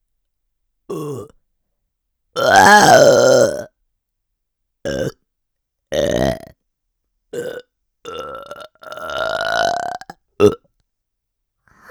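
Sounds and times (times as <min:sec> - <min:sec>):
speech: 0:00.9 - 0:01.4, 0:02.4 - 0:03.6
loud burping: 0:02.4 - 0:03.7, 0:07.4 - 0:10.6.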